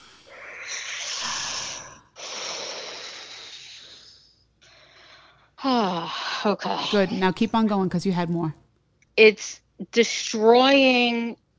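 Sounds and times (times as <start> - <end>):
deep breath in and out: 0.0 - 5.6
speech: 5.6 - 8.6, 9.2 - 11.4.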